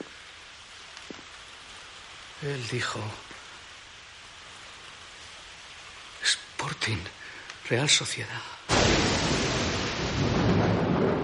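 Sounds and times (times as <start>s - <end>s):
speech: 2.4s - 3.3s, 6.6s - 9.0s
loud crack of thunder during a storm: 8.7s - 11.2s
storm noise: 8.7s - 11.2s.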